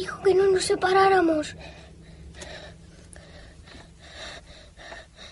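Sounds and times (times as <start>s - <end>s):
speech: 0.1s - 1.8s
heavy breathing with gasping inhales and exhales: 1.5s - 5.3s.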